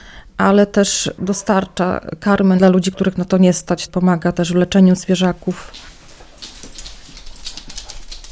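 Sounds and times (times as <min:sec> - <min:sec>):
speech: 0:00.4 - 0:05.9
patter of many tiny animal paws: 0:05.5 - 0:08.3.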